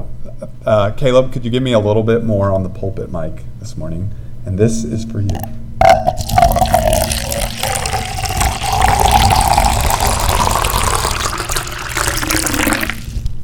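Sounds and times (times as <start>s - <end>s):
speech: 0.6s - 5.6s
water pouring steadily into a container: 6.1s - 13.3s.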